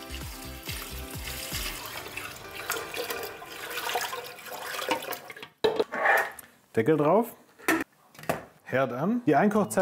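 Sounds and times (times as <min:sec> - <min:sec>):
warm water poured into a pressure canner holding jars: 0:00.0 - 0:05.6
speech: 0:06.8 - 0:07.4, 0:08.7 - 0:09.8.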